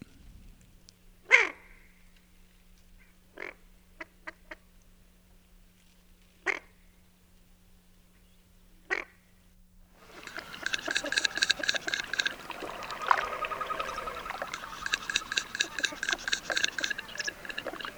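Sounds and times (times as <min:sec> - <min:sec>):
female Barrow's goldeneye ducks giving low throaty cook calls: 0:10.0 - 0:17.9.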